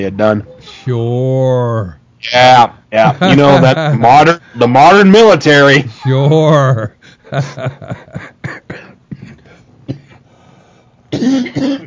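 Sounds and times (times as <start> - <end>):
speech: 0.0 - 9.3, 11.2 - 11.8
deep hacking cough: 8.2 - 10.2, 11.1 - 11.8.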